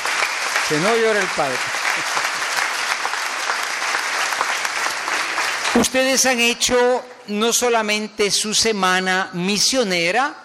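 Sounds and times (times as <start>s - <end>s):
audience at a thanksgiving mass applauding: 0.0s - 6.4s
speech: 0.7s - 2.3s, 5.8s - 10.4s.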